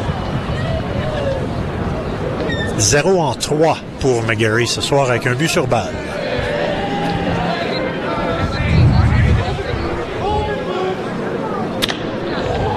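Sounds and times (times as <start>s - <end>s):
stadium crowd murmuring: 0.0s - 12.7s
speech: 2.8s - 6.1s.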